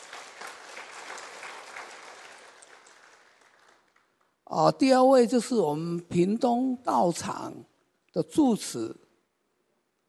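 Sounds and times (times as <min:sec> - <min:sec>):
audience applause at a morning forum in a Buddhist centre: 0:00.0 - 0:04.2
speech: 0:04.5 - 0:09.0.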